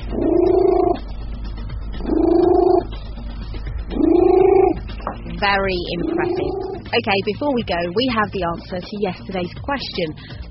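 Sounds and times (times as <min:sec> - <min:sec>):
cat purring loudly: 0:00.0 - 0:01.2, 0:01.8 - 0:03.0, 0:03.8 - 0:07.0
speech: 0:05.4 - 0:10.4.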